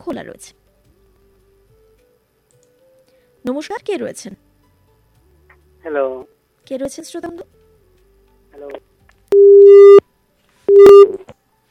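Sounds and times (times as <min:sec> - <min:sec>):
speech: 0:00.0 - 0:00.6, 0:03.4 - 0:04.4, 0:05.8 - 0:07.6, 0:08.6 - 0:08.9
telephone busy tone after a dropped call on a phone-in line: 0:09.4 - 0:10.0, 0:10.7 - 0:11.2.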